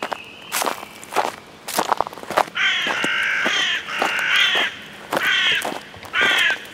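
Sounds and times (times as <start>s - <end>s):
footsteps crunching outdoors at a walking pace: 0.0s - 6.7s
crows cawing: 2.6s - 6.7s.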